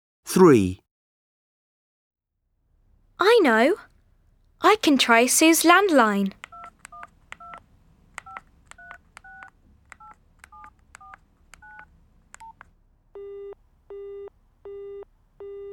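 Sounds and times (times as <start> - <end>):
speech: 0.3 - 0.8, 3.2 - 3.9, 4.6 - 6.4
touch-tone telephone keypad beeps from dialing a number: 6.4 - 7.6, 8.2 - 12.6
buzzy telephone busy-signal tones: 13.2 - 15.7.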